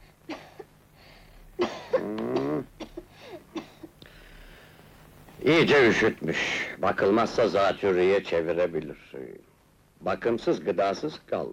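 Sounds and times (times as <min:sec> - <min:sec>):
child coughing: 0:00.3 - 0:00.7, 0:01.6 - 0:03.9
speech: 0:05.5 - 0:11.5.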